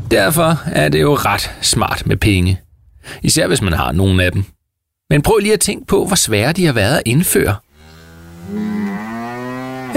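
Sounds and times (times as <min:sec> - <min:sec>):
speech: 0:00.1 - 0:04.5, 0:05.1 - 0:07.7, 0:08.5 - 0:08.7
cow mooing: 0:07.7 - 0:09.9.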